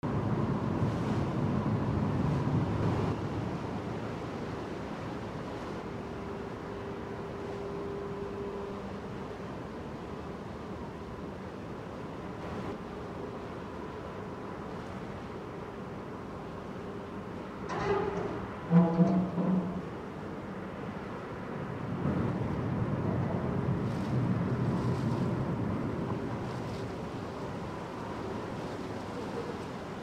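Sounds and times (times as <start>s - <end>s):
harbor water: 0.0s - 30.0s
metal sounds in a harbor: 17.7s - 20.0s.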